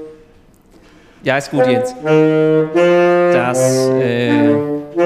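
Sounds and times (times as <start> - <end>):
speech: 1.3 - 4.7
short instrumental separator jingle with reedy melody: 3.2 - 4.9.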